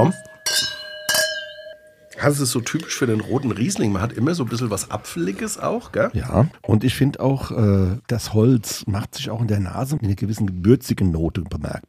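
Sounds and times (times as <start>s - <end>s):
speech: 0.0s - 0.2s, 2.2s - 11.8s
wine glasses clinking in a toast: 0.0s - 5.7s.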